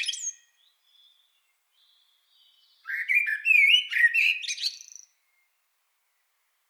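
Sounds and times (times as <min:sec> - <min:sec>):
common blackbird Turdus merula singing with squeaks and fluted warble: 0:00.0 - 0:05.2.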